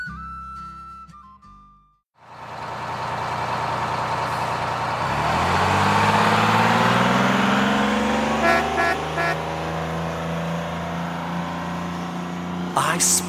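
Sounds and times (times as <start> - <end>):
yellow school bus engine rumbling and accelerating through a town: 2.2 - 13.2
school bus beeping horn toots: 8.3 - 9.5.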